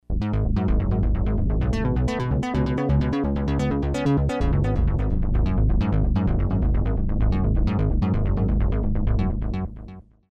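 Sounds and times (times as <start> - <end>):
synthesizer bass: 0.0 - 10.2.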